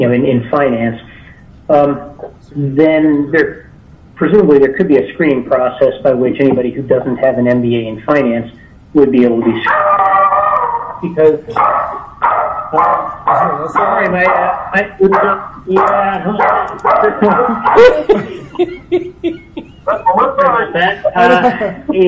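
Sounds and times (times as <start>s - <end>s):
speech: 0.0s - 1.1s, 1.7s - 10.3s, 11.0s - 11.9s, 12.7s - 22.0s
dog barking and yapping: 9.6s - 18.2s
laughter: 16.3s - 22.0s.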